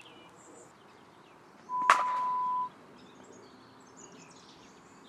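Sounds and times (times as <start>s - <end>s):
cricket match sounds: 1.7s - 2.7s.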